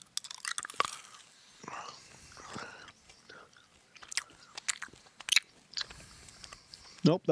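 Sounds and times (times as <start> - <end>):
biting and chewing a yumberry: 0.0 - 7.2.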